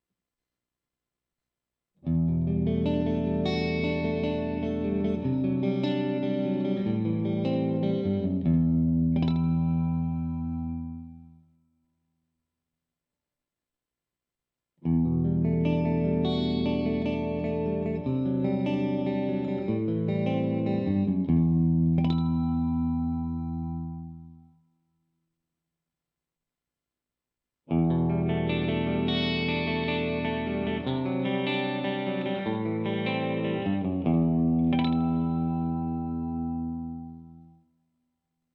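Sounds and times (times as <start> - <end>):
clean electric guitar through split humbucker pickup: 2.0 - 11.4, 14.8 - 24.5, 27.7 - 37.6.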